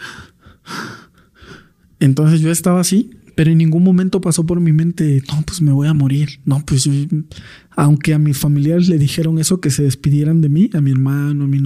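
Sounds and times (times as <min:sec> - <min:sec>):
person imitating labored gasping for breath: 0:00.0 - 0:01.8
speech: 0:02.0 - 0:11.6.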